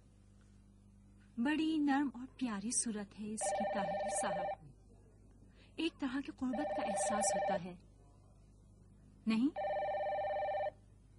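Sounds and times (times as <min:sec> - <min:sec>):
speech: 0:01.4 - 0:04.7, 0:05.8 - 0:07.9, 0:09.2 - 0:09.7
telephone ringing: 0:03.4 - 0:04.6, 0:06.5 - 0:07.6, 0:09.6 - 0:10.8.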